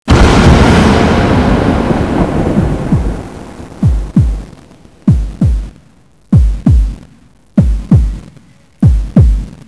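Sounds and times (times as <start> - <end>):
unholy ambience: 0.1 - 9.6
heartbeat: 2.4 - 4.5, 5.1 - 9.6.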